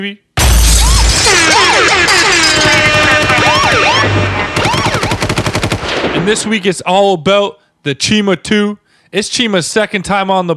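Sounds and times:
speech: 0:00.0 - 0:00.3, 0:01.3 - 0:04.6, 0:06.2 - 0:10.5
rapid bursts of gunshot sound effects: 0:00.4 - 0:06.7
swooping whistle and siren-like tones: 0:00.8 - 0:05.2.

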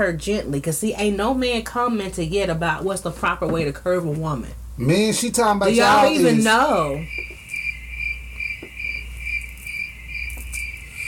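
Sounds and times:
speech: 0:00.0 - 0:07.3
low hum: 0:00.0 - 0:11.0
crickets chirping: 0:07.0 - 0:11.0.

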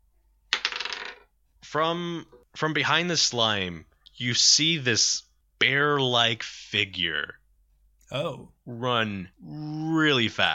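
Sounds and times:
large dice tumbling across a table during a tabletop role-playing game: 0:00.5 - 0:01.3
speech: 0:01.7 - 0:07.4, 0:08.1 - 0:10.5.

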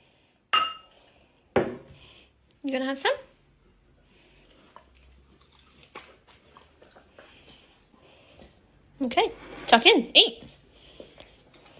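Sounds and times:
glasses clinking in a toast: 0:00.5 - 0:00.9
speech: 0:02.6 - 0:03.3, 0:09.0 - 0:10.4.

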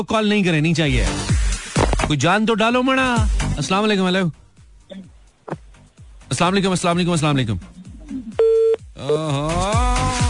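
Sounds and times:
speech: 0:00.0 - 0:01.3, 0:02.1 - 0:05.1, 0:06.4 - 0:07.7, 0:09.0 - 0:10.2
short steady beep on telephone line: 0:08.4 - 0:08.8.

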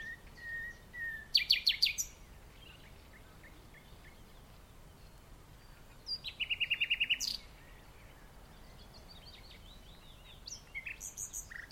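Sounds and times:
common nightingale singing in the dunes at The Hague: 0:00.0 - 0:11.7.

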